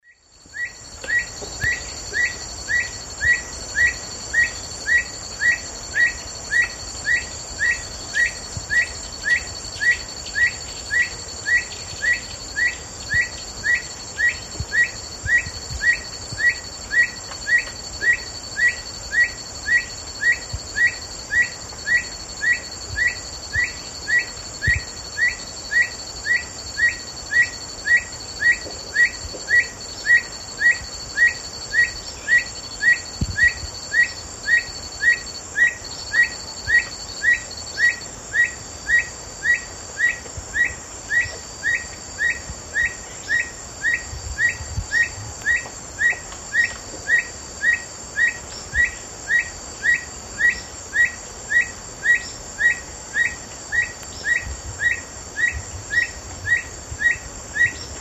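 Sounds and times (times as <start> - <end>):
Neoctantes niger singing: 0.0 - 57.9.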